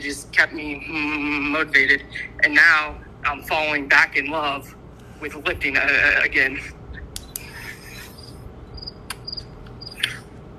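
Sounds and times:
speech: 0:00.0 - 0:06.8
crickets chirping outdoors: 0:06.9 - 0:10.2
sharp clicks: 0:07.1 - 0:07.5, 0:09.0 - 0:10.2.

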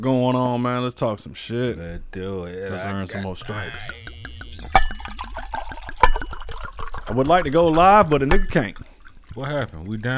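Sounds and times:
speech: 0:00.0 - 0:05.3, 0:07.1 - 0:10.1
drinks pouring into glasses: 0:03.4 - 0:10.1.

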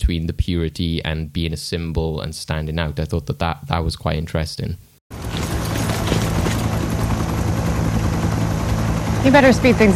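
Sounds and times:
speech: 0:00.1 - 0:05.4, 0:09.2 - 0:09.9
helicopter rotor thumping before takeoff: 0:05.1 - 0:09.9.

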